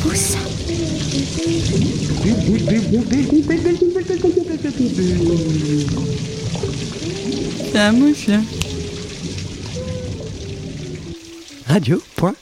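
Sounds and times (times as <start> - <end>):
bath water bubbling and gurgling as someone makes big bubbles: 0.0 - 12.4
speech: 0.1 - 6.4, 7.6 - 8.6, 11.7 - 12.4.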